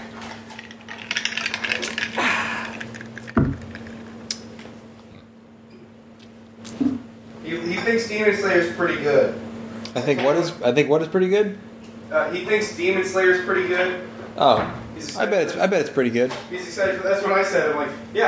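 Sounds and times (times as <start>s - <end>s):
drink pouring into a glass: 0.6s - 4.0s
glassware clinking and tapping: 0.6s - 4.0s
speech: 7.8s - 18.2s.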